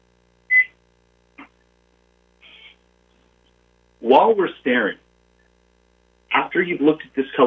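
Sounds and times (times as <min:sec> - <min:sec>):
short electronic timer beeps: 0:00.5 - 0:00.7
speech: 0:04.1 - 0:05.0, 0:06.5 - 0:07.4.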